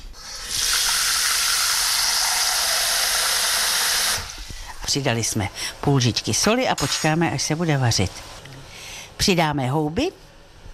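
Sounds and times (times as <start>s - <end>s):
water pouring into a pot: 0.4s - 4.4s
speech: 4.9s - 8.4s, 9.2s - 10.3s.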